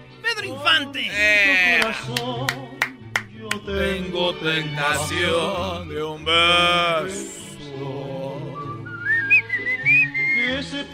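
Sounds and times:
speech: 0:00.4 - 0:02.6, 0:03.6 - 0:08.0
person whistling a song's melody: 0:08.5 - 0:10.7.

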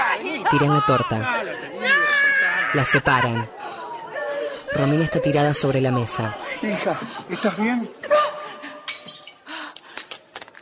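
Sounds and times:
speech: 0:00.1 - 0:02.0, 0:02.7 - 0:03.6, 0:04.7 - 0:08.1
wine glass breaking when stepped on: 0:08.9 - 0:09.5.

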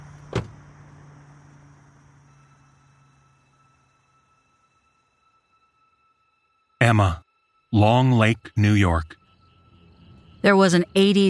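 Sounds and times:
car door slamming: 0:00.2 - 0:00.6
speech: 0:06.9 - 0:09.2, 0:10.4 - 0:11.2.

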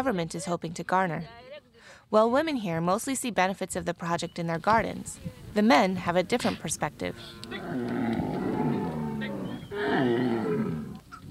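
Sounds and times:
speech: 0:00.0 - 0:08.4
white humped-backed cows with giant horns lowing at water troughs: 0:06.3 - 0:11.2.

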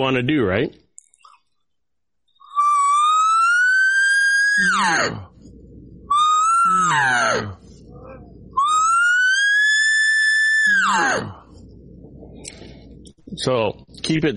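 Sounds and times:
speech: 0:00.0 - 0:00.8, 0:04.6 - 0:05.3, 0:06.9 - 0:07.6, 0:10.9 - 0:11.4, 0:13.3 - 0:14.3
loud human voice siren exercise for elk calling practice: 0:02.6 - 0:05.3, 0:06.1 - 0:11.4.

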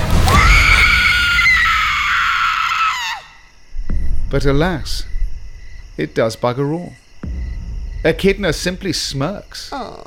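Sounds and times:
shrill ear-piercing horror-movie scream: 0:00.2 - 0:03.5
speech: 0:04.3 - 0:05.1, 0:06.0 - 0:07.0, 0:08.0 - 0:10.0.

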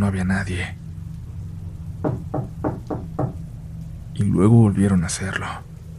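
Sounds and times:
constant low hum: 0:00.0 - 0:05.9
speech: 0:00.1 - 0:00.8, 0:04.2 - 0:05.7
firm knocks on a door: 0:02.0 - 0:03.4.

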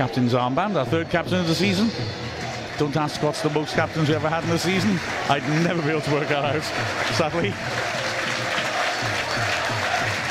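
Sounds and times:
speech: 0:00.0 - 0:08.1
large football crowd cheering and clapping in a stadium: 0:02.2 - 0:10.2
faint rhythmic crowd chanting: 0:04.4 - 0:10.2.

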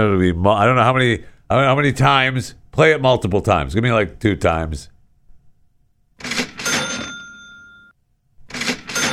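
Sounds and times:
speech: 0:00.0 - 0:04.9, 0:06.2 - 0:06.4
cash register sound effect mechanical clatter: 0:06.2 - 0:07.9, 0:08.5 - 0:09.1
cash register bright bell ding: 0:06.4 - 0:08.0, 0:08.6 - 0:09.1.

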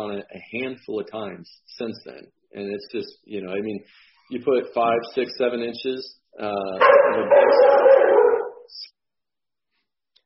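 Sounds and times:
speech: 0:00.1 - 0:09.0
dog barking in a howling burst: 0:06.8 - 0:08.7.

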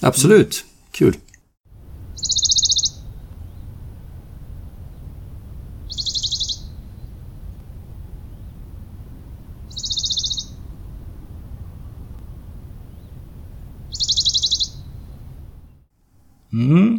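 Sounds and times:
speech: 0:00.0 - 0:01.2
steady low outdoor rumble: 0:01.7 - 0:16.9
Western Bonelli's warbler singing dry high-pitched trills: 0:02.2 - 0:03.7, 0:05.8 - 0:07.1, 0:09.7 - 0:10.7, 0:13.9 - 0:15.2.

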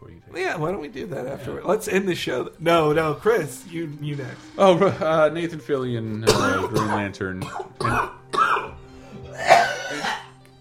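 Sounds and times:
speech: 0:00.4 - 0:08.2
harsh hacking coughing fit: 0:06.3 - 0:10.4.

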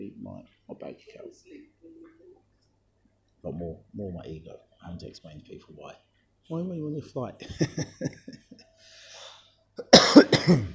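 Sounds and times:
speech: 0:00.0 - 0:01.8, 0:03.4 - 0:08.4, 0:09.8 - 0:10.7
laughter: 0:07.4 - 0:08.8
harsh loud cough into the microphone: 0:09.8 - 0:10.7.

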